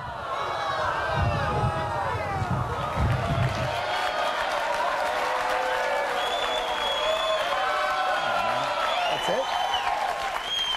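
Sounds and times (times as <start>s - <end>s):
large crowd of supporters booing: 0.0s - 10.7s
scattered claps: 2.9s - 10.7s.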